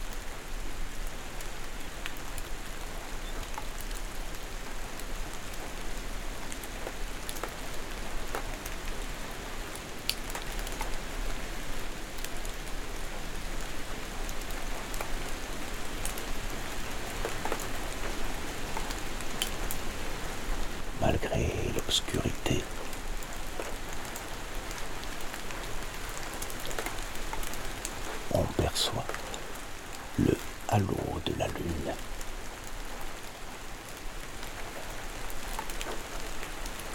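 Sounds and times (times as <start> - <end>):
light rain shower at night: 0.0 - 36.9
speech: 21.2 - 22.6.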